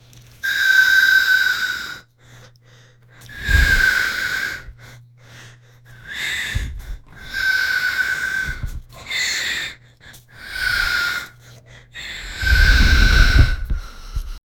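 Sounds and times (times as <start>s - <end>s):
agonizing heavy breathing and whimpering: 0.5s - 14.4s.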